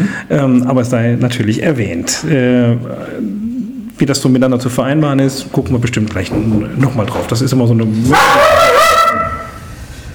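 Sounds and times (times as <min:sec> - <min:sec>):
speech: 0:00.2 - 0:08.6
dog barking: 0:08.1 - 0:09.6.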